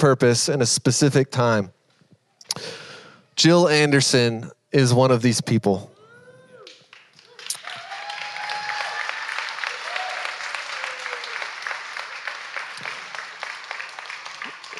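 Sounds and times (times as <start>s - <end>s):
speech: 0.0s - 1.8s, 2.6s - 2.8s, 3.4s - 5.9s
audience clapping: 6.6s - 14.7s.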